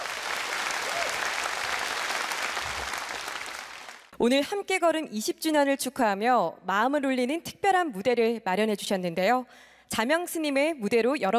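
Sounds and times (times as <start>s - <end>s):
audience applause: 0.0s - 4.1s
speech: 4.2s - 11.3s.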